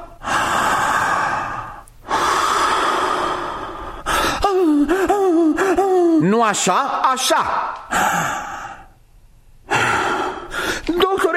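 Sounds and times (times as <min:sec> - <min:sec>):
person panting imitating a dog in labor: 0:00.0 - 0:05.8, 0:07.9 - 0:08.9, 0:09.7 - 0:10.9
speech: 0:06.3 - 0:08.4.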